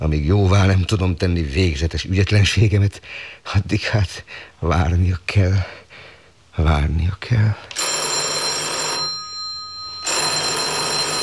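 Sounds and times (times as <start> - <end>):
speech: 0.0 - 5.8, 6.6 - 7.9
telephone bell ringing: 7.7 - 11.2.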